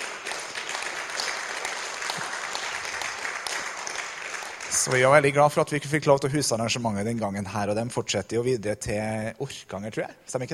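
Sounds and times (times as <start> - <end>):
audience applause: 0.0 - 5.4
speech: 4.8 - 10.5.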